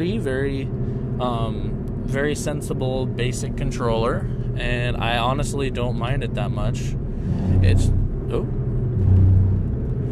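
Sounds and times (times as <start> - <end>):
speech: 0.0 - 9.2
car engine and road rumble from inside a moving car: 0.0 - 10.0
vehicle being overtaken by a car: 7.1 - 10.0.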